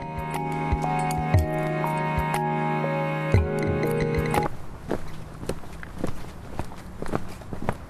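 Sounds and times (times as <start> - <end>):
sustained musical tones: 0.0 - 4.5
footsteps crunching along a forest path through dense vegetation in the Montemario reserve: 4.4 - 7.8.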